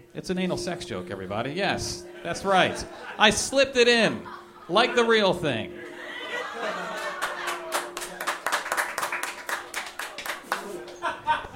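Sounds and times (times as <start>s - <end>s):
speech: 0.1s - 5.8s
laughter: 2.0s - 3.4s, 4.0s - 11.5s
audience applause: 6.8s - 11.0s.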